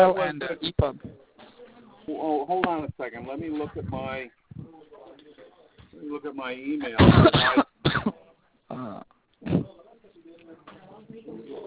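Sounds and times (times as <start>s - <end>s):
speech: 0.0s - 1.3s, 2.1s - 11.6s
person coughing: 7.0s - 9.7s
throat clearing: 7.0s - 9.7s.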